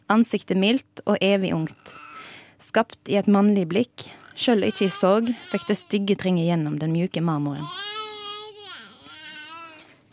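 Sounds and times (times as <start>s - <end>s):
speech: 0.1s - 2.0s, 2.6s - 7.9s
baby crying: 1.8s - 2.3s, 4.3s - 6.2s, 7.6s - 9.9s.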